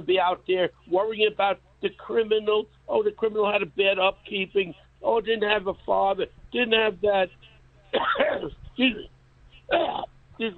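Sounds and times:
speech: 0:00.0 - 0:09.1, 0:09.7 - 0:10.5
coughing and throat clearing: 0:08.0 - 0:08.6, 0:09.7 - 0:10.1.

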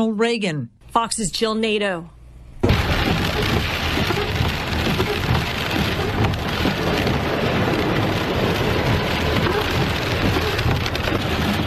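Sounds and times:
speech: 0:00.0 - 0:02.2
low rumbling: 0:02.1 - 0:11.6
heavy storm rain on the roof and windows of a driving car: 0:02.6 - 0:11.6.

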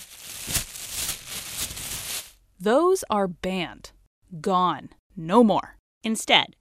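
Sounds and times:
thin plastic grocery bag crinkling and rustling: 0:00.0 - 0:02.4
speech: 0:02.6 - 0:06.6.

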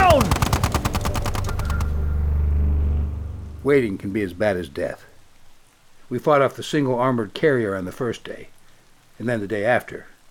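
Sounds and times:
chain gun firing: 0:00.0 - 0:01.9
low rumble: 0:00.9 - 0:04.2
speech: 0:03.6 - 0:05.1, 0:06.1 - 0:08.6, 0:09.2 - 0:10.1.

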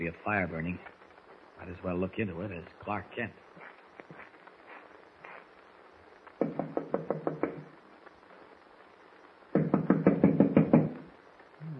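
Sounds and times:
speech: 0:00.0 - 0:01.0, 0:01.6 - 0:03.5
rapid knocking on the wooden door of a log cabin: 0:06.4 - 0:07.7, 0:09.6 - 0:11.0.

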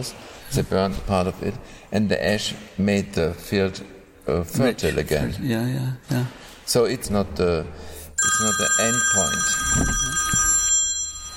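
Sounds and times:
speech: 0:00.0 - 0:10.2
telephone ringing: 0:08.2 - 0:11.3.

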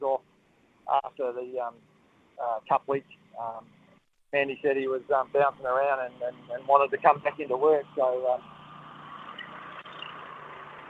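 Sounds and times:
speech: 0:01.2 - 0:08.6
truck rumbling past: 0:05.2 - 0:10.8.

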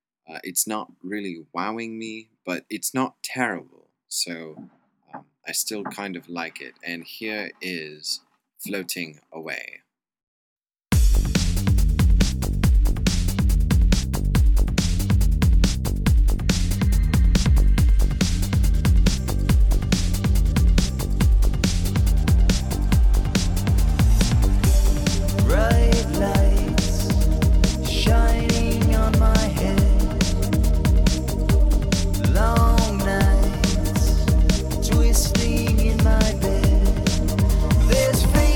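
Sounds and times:
speech: 0:00.3 - 0:09.8
steady driving beat: 0:05.7 - 0:06.2, 0:11.0 - 0:38.5
drenched reverb-heavy vocals: 0:25.3 - 0:30.6, 0:32.2 - 0:38.5.

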